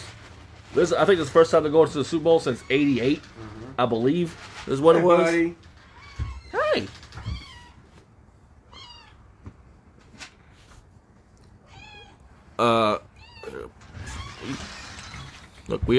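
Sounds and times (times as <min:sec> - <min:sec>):
speech: 0:00.7 - 0:05.7, 0:06.8 - 0:07.0, 0:12.6 - 0:13.0, 0:15.7 - 0:15.9
cat meowing: 0:05.9 - 0:07.9, 0:08.7 - 0:09.3, 0:11.6 - 0:12.2, 0:13.2 - 0:14.7.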